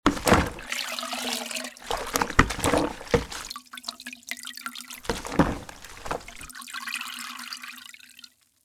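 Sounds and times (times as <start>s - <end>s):
mop washing in plastic bucket: 0.0s - 3.5s, 5.0s - 6.5s.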